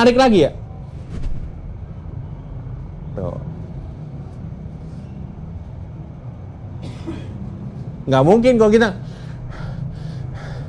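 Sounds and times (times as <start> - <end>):
speech: 0.0 - 0.6, 8.0 - 9.1
low steady hum: 0.0 - 10.6
deep drawn-out inhale through the mouth: 9.0 - 10.6.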